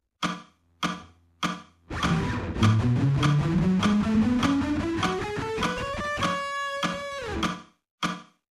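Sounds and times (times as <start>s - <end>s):
guitar played with slow economy picking: 1.9s - 7.5s.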